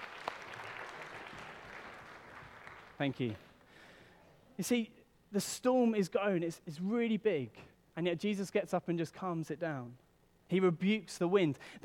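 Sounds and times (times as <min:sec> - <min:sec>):
audience clapping for the actors after a short performance: 0:00.0 - 0:03.7
speech: 0:03.0 - 0:03.5, 0:04.6 - 0:11.8.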